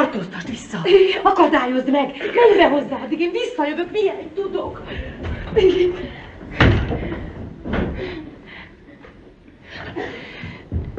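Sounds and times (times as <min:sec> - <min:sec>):
speech: 0:00.1 - 0:07.2, 0:09.9 - 0:10.5
door opening and closing: 0:06.5 - 0:08.2.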